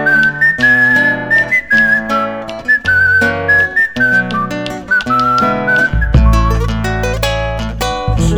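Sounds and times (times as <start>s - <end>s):
steady guitar accompaniment: 0.0s - 8.3s
whistled zamba folk melody: 0.0s - 8.3s.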